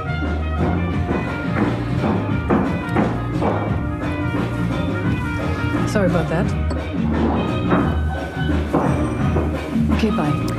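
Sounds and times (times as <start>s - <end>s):
footsteps climbing a wooden staircase: 0.6s - 5.2s, 6.7s - 10.5s
speech: 6.0s - 8.0s, 10.0s - 10.5s.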